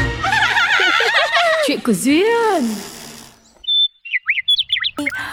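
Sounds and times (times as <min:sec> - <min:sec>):
laughter: 0:00.2 - 0:01.8
birds chirping loudly: 0:03.4 - 0:05.3.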